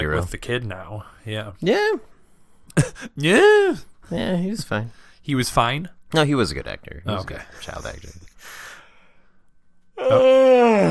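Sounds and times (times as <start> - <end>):
speech: 0.0 - 2.1, 2.7 - 8.6, 10.0 - 10.9
man yawning loudly: 10.0 - 10.9.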